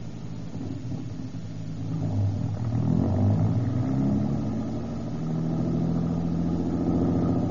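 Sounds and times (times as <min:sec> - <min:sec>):
car engine revving and pulling away: 0:00.0 - 0:07.5.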